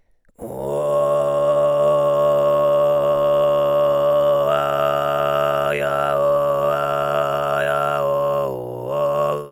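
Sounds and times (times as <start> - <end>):
kargyraa throat singing: 0.3 - 9.4.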